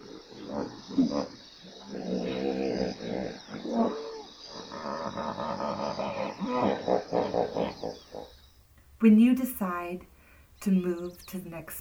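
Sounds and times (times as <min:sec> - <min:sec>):
hippos grunting and bellowing at a watering hole in South Africa: 0:00.0 - 0:08.5
speech: 0:09.0 - 0:11.7.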